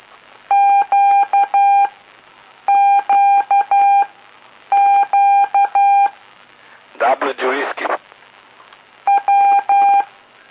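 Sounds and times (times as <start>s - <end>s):
Morse code tone beeping the letter Q: 0.5s - 1.9s, 2.7s - 4.1s, 4.7s - 6.2s, 9.1s - 10.1s.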